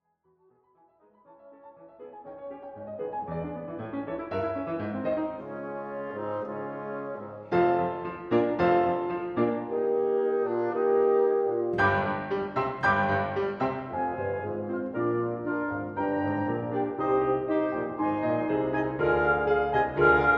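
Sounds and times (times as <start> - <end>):
wind quintet playing fourth movement: 4.7 - 20.3.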